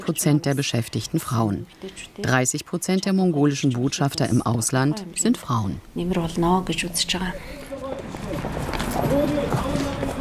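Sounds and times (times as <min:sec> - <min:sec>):
speech: 0:00.0 - 0:07.6, 0:09.1 - 0:09.9
outdoor street noise: 0:00.0 - 0:10.1
several voices chattering at a street café: 0:00.0 - 0:10.1
scuffing footsteps: 0:07.6 - 0:10.1.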